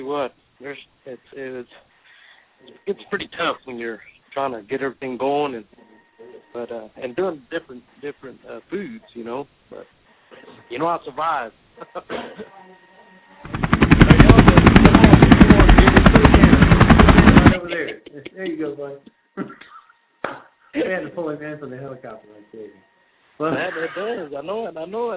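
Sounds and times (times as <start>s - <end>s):
speech: 0.0s - 1.9s, 2.6s - 12.9s, 18.5s - 19.5s, 20.8s - 22.8s, 23.4s - 25.1s
helicopter flying with rapid rotor chop: 13.4s - 17.7s.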